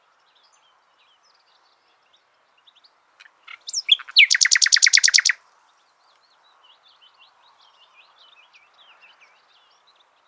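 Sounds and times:
common nightingale Luscinia megarhynchos singing: 3.2s - 5.4s.

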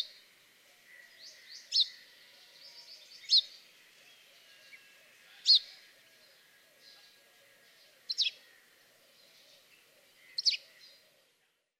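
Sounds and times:
house sparrow chirps: 0.0s - 11.1s.

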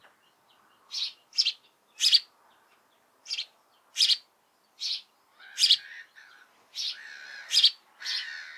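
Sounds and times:
house sparrow Passer domesticus chirping: 0.5s - 2.3s, 3.2s - 5.9s, 6.8s - 8.3s.

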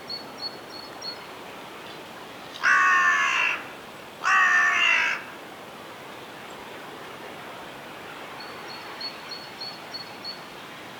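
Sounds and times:
carrion crow (Corvus corone) giving rasping caws: 2.6s - 5.4s.

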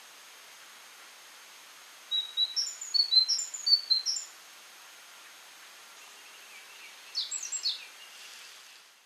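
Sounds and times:
background hiss: 0.0s - 9.0s
great tit Parus major calling in high chirping notes: 2.1s - 4.3s, 6.0s - 8.4s.

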